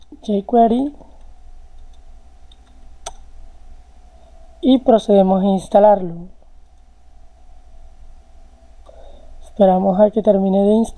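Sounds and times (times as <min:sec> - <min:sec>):
steady low hum: 0:00.0 - 0:10.9
speech: 0:00.2 - 0:01.0, 0:04.7 - 0:06.4, 0:09.6 - 0:10.9
computer mouse left-click: 0:01.1 - 0:03.3.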